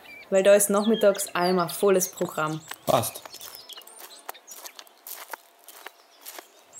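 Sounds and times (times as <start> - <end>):
birds chirping: 0.0 - 6.7
speech: 0.3 - 3.4
footsteps of two people crunching at a festival: 2.5 - 6.7.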